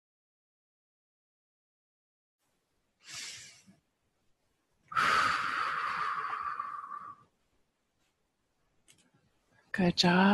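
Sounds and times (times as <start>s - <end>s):
long loud airy exhale through mouth: 3.0s - 3.7s, 4.9s - 7.2s
soft inhale through nose: 3.0s - 3.8s, 4.9s - 7.3s
speech: 9.8s - 10.3s.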